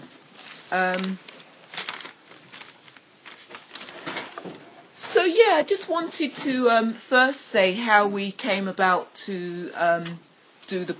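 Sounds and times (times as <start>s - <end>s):
scraps of paper rustling and crinkling: 0.0s - 4.7s
speech: 0.7s - 1.3s, 5.2s - 10.9s.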